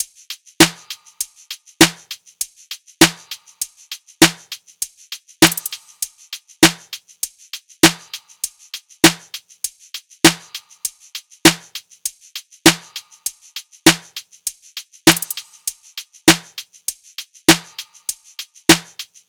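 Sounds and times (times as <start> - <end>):
top drum loop: 0.0 - 2.2, 3.0 - 4.6, 5.4 - 7.0, 7.8 - 9.4, 10.2 - 11.8, 12.7 - 14.2, 15.0 - 19.1.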